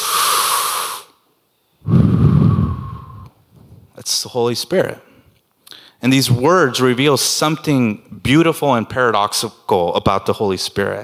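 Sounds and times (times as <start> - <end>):
deep breathing in and out: 0.0 - 1.2, 1.8 - 3.4, 5.1 - 6.0
speech: 4.0 - 5.1, 6.0 - 11.0.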